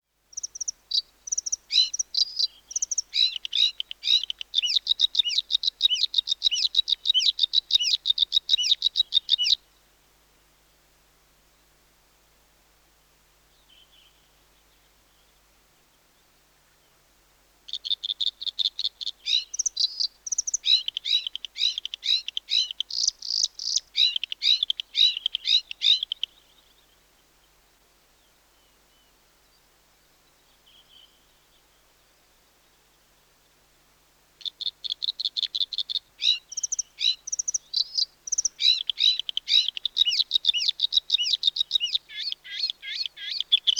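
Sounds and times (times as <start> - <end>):
bluethroat: 0.3 - 9.6, 17.7 - 27.0, 34.4 - 43.7.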